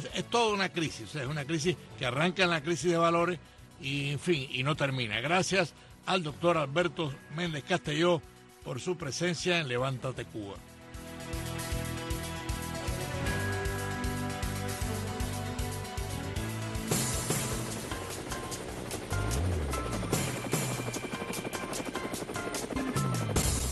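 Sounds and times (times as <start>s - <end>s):
speech: 0.0s - 10.7s
dense helicopter engine roar: 10.6s - 23.7s
helicopter rotor blades thumping: 14.6s - 23.7s.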